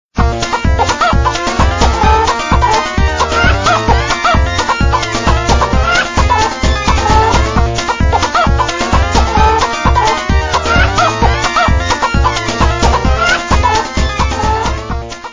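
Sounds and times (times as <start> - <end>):
country chicken: 0.4 - 15.3
laughter: 0.4 - 15.3.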